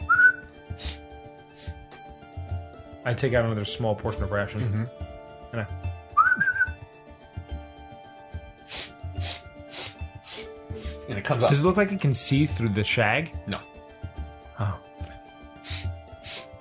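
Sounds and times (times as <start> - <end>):
person whistling to call an animal: 0.0 - 1.0, 6.1 - 6.8
soft breathy bursts: 0.7 - 1.9, 8.6 - 11.1, 15.6 - 16.5
speech: 3.1 - 5.9, 11.1 - 13.7.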